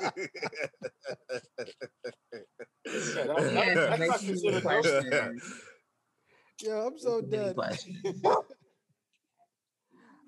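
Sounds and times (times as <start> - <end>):
laughter: 0.0 - 5.4
speech: 0.1 - 0.9, 3.2 - 5.6, 6.6 - 8.5
dog barking: 8.3 - 8.5.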